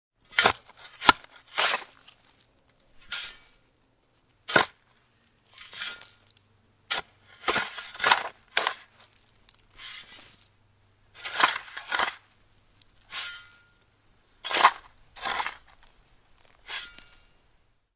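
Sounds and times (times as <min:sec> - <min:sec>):
shovel digging soil: 0:00.2 - 0:03.7, 0:04.4 - 0:13.8, 0:14.4 - 0:17.4.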